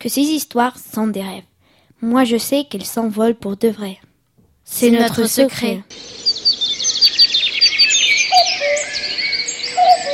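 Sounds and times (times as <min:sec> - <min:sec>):
speech: 0:00.0 - 0:04.1, 0:04.7 - 0:06.6
birds chirping and trilling in a garden: 0:05.9 - 0:10.1.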